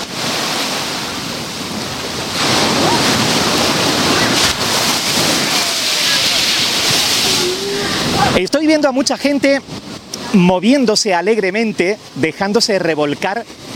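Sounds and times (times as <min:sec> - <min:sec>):
faint gusts of wind over the microphone: 0:00.0 - 0:10.6
Mediterranean sea waves breaking on breakwater: 0:00.0 - 0:12.4
speech: 0:08.4 - 0:13.6.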